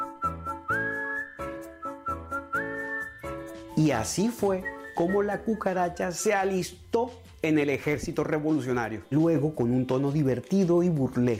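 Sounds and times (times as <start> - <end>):
bright playful whistled tune: 0.0 - 6.8
bouncy regular rhythmic accompaniment: 0.0 - 11.3
speech: 3.8 - 11.3.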